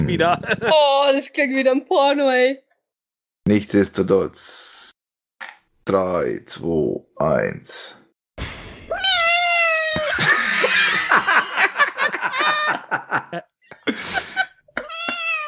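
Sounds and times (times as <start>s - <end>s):
laughter: 0.0s - 0.9s, 9.8s - 15.4s
speech: 0.0s - 2.6s, 3.4s - 8.6s
cat meowing: 8.9s - 10.2s, 14.8s - 15.4s.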